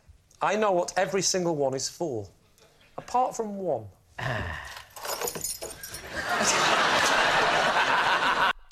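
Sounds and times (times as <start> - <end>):
speech: 0.4 - 2.4, 3.0 - 4.6
steady rattling and shuffling of keys: 4.7 - 6.4
set of keys jangling: 4.8 - 6.2
laughter: 6.0 - 8.7.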